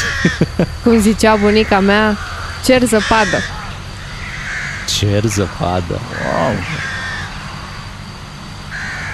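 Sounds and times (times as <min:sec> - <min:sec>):
crows cawing: 0:00.0 - 0:00.4, 0:01.2 - 0:07.5, 0:08.7 - 0:09.1
laughter: 0:00.0 - 0:01.2
outdoor rumble: 0:00.0 - 0:09.1
speech: 0:00.2 - 0:03.6, 0:05.0 - 0:06.9.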